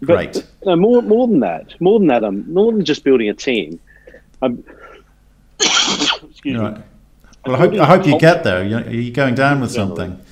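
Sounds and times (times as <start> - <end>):
speech: 0.0 - 4.8, 5.6 - 10.2
harsh rasping coughing: 4.0 - 6.4.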